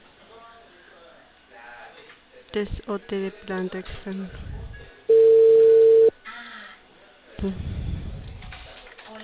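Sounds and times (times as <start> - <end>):
speech: 2.5 - 4.6, 7.4 - 7.8
telephone dial tone while placing a call: 5.1 - 6.1.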